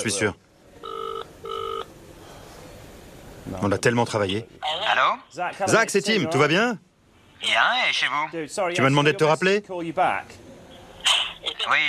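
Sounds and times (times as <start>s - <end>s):
speech: 0.0s - 0.5s, 3.5s - 10.4s, 11.6s - 11.8s
ringback tone of an outgoing telephone call: 0.8s - 1.9s.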